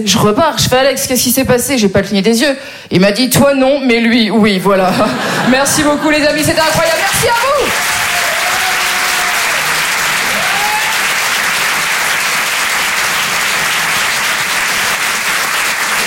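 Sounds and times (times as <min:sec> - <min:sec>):
speech: 0:00.0 - 0:08.0
laughter: 0:04.9 - 0:07.1
large audience applause after a comedy set: 0:06.9 - 0:16.0.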